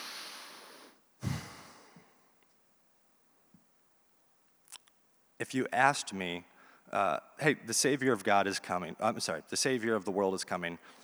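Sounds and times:
snort-like puff of air: 0.0s - 2.0s
deep breath: 0.0s - 2.3s, 6.5s - 6.9s, 10.8s - 11.0s
speech: 5.4s - 11.0s.

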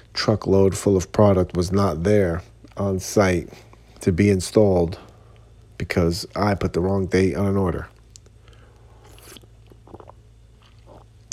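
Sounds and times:
low steady hum: 0.0s - 11.3s
speech: 0.2s - 5.1s, 5.8s - 7.9s
person sipping water: 8.2s - 11.3s.

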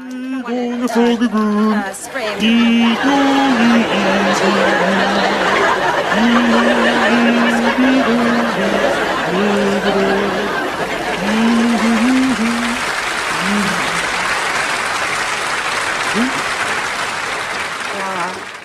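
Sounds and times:
person speaking: 0.0s - 14.4s, 16.2s - 16.4s
sitcom studio audience laughter on a laugh track: 0.6s - 18.4s.

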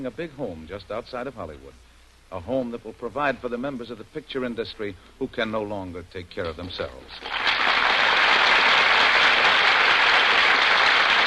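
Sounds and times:
speech: 0.0s - 7.4s
large studio audience applause: 7.2s - 11.2s.

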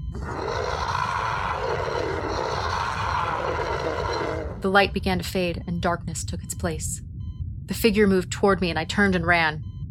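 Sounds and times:
deafening rasping scream of a shadowy creature: 0.2s - 4.6s
speech: 4.6s - 7.1s, 7.7s - 9.7s.

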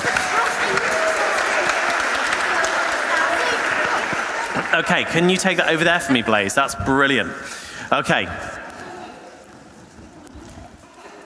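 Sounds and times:
audience applause: 0.0s - 6.4s
speech: 4.7s - 8.5s.

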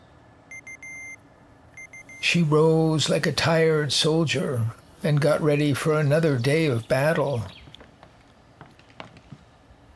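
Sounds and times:
quiet hum: 0.0s - 9.9s
phone alarm beeping: 0.5s - 1.2s, 1.8s - 2.4s
speech: 2.2s - 7.6s.

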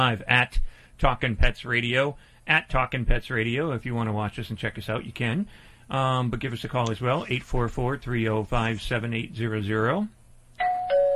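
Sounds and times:
speech: 0.0s - 10.2s
doorbell chiming a two-tone ding-dong: 10.6s - 11.1s.

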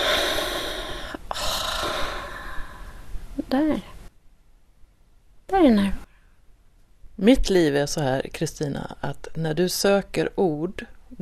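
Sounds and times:
deep audible exhale of breath: 0.0s - 3.2s
speech: 3.5s - 3.9s, 5.6s - 6.0s, 7.2s - 11.2s.

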